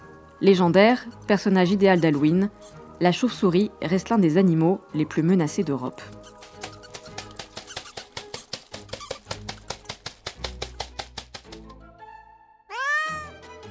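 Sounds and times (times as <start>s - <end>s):
speech: 0.4s - 6.4s
cat meowing: 12.7s - 13.4s.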